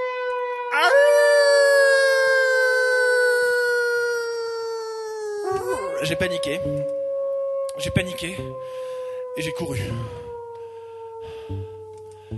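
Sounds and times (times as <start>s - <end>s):
werewolf howling: 0.7s - 6.5s, 9.7s - 10.3s
speech: 6.0s - 7.0s, 7.8s - 10.2s.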